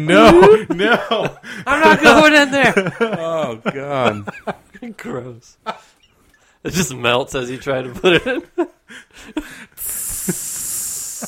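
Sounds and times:
speech: 0:00.0 - 0:05.9, 0:06.6 - 0:10.4
laughter: 0:00.1 - 0:06.0, 0:07.6 - 0:09.6
vocal imitation of a steak sizzling: 0:09.8 - 0:11.2.

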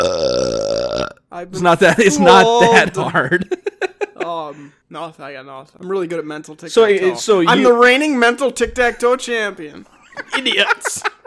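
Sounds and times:
long loud burp: 0:00.0 - 0:01.3
speech: 0:01.4 - 0:03.6, 0:04.3 - 0:10.7
laughter: 0:01.9 - 0:04.6, 0:09.8 - 0:11.2.

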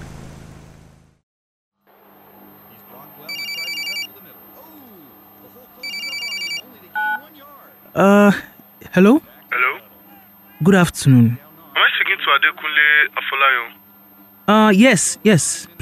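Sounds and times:
murmur of noise: 0:02.2 - 0:15.8
telephone ringing with electronic trill: 0:03.2 - 0:04.3, 0:05.8 - 0:07.3
speech: 0:08.0 - 0:09.3, 0:10.6 - 0:11.4, 0:12.4 - 0:13.8, 0:14.5 - 0:15.8.

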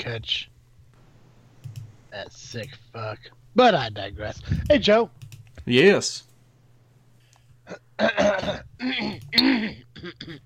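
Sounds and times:
speech: 0:00.0 - 0:00.5, 0:02.1 - 0:06.3, 0:07.7 - 0:10.4
person coughing: 0:07.7 - 0:08.6
person clearing throat: 0:07.7 - 0:10.4.

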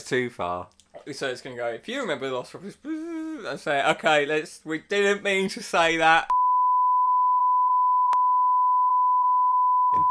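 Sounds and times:
speech: 0:00.0 - 0:06.4
censor bleep tone: 0:06.3 - 0:10.0.

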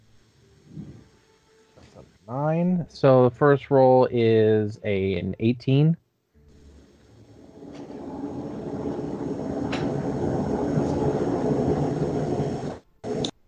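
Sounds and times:
speech: 0:02.3 - 0:06.0
train passing by a house: 0:06.5 - 0:13.3.

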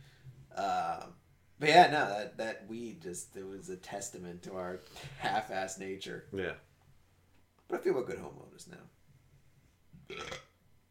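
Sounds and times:
speech: 0:00.6 - 0:06.7, 0:07.7 - 0:09.0, 0:10.1 - 0:10.4
short throaty burp: 0:10.0 - 0:10.6.

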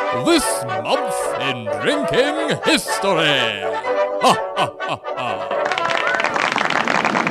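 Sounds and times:
speech: 0:00.2 - 0:05.4
hearty laughter: 0:00.2 - 0:05.6
steady dense clapping: 0:05.5 - 0:07.2.

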